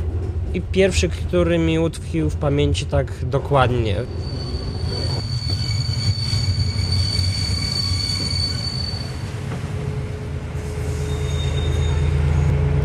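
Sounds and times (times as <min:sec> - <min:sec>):
passenger train rolling to a halt at a station: 0:00.0 - 0:12.8
speech: 0:00.5 - 0:04.4
passenger train brake squeals: 0:04.0 - 0:09.3, 0:10.6 - 0:12.6.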